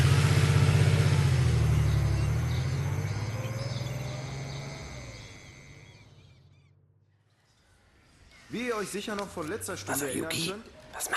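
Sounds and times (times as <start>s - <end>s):
car engine rumbling as the vehicle drives away: 0.0s - 6.7s
faint birdsong: 1.0s - 9.0s
speech: 8.5s - 11.1s.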